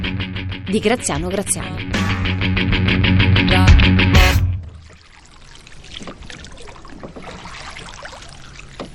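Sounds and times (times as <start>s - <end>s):
speech: 0.7s - 4.4s
oar strokes rowing a Venetian boat: 4.7s - 8.9s.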